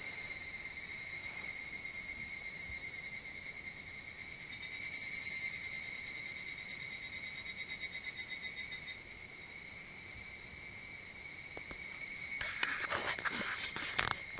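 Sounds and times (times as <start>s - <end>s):
higurashi cicada evening song: 0.1s - 14.3s.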